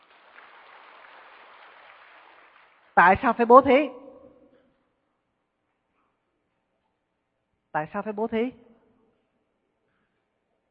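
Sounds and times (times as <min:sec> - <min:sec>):
crowd clapping: 0:00.0 - 0:03.0
speech: 0:03.0 - 0:04.0, 0:07.7 - 0:08.7.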